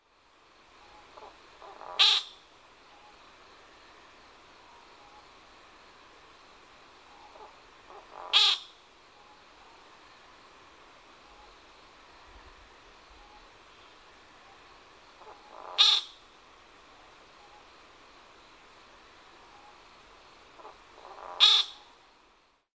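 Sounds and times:
amamiyamashigi woodcock calling in Kagoshima: 0:00.8 - 0:03.2, 0:07.1 - 0:09.3, 0:15.2 - 0:16.2, 0:20.6 - 0:22.0.

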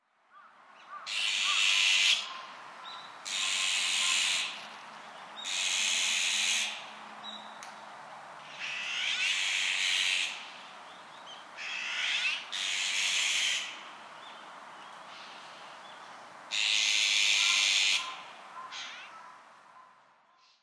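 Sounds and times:
azure-winged magpie calling in Kokubunji: 0:00.4 - 0:04.6, 0:05.4 - 0:07.4, 0:08.4 - 0:10.5, 0:11.6 - 0:13.8, 0:16.5 - 0:19.9.

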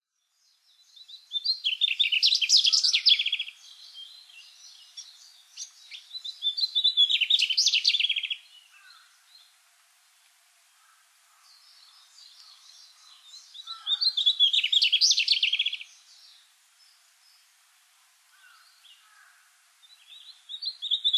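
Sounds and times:
mugimaki flycatcher calling in Hyogo: 0:01.0 - 0:09.1, 0:11.8 - 0:16.2, 0:18.4 - 0:21.1.

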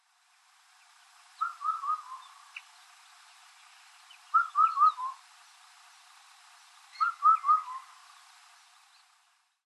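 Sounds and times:
Indian cuckoo calling: 0:00.7 - 0:05.6, 0:06.8 - 0:09.2.

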